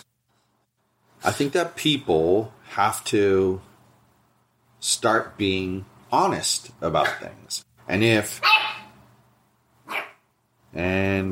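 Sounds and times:
speech: 0:01.2 - 0:03.7, 0:04.8 - 0:08.6, 0:10.8 - 0:11.3
dachshund barking: 0:08.4 - 0:08.9, 0:09.8 - 0:10.3.

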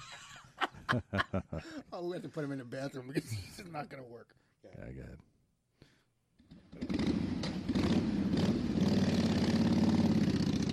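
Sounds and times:
laughter: 0:00.0 - 0:01.9
speech: 0:00.9 - 0:05.3
motorcycle engine revving: 0:06.5 - 0:10.7.

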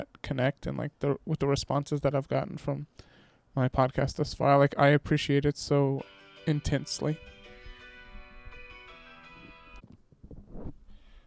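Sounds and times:
speech: 0:00.0 - 0:07.3
phone with bright melodic electronic ringtone: 0:06.0 - 0:09.8.

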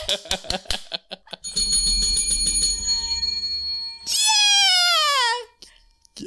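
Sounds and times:
speech: 0:00.1 - 0:00.8
bright bell ringing in repeated metallic dings: 0:01.5 - 0:06.2.

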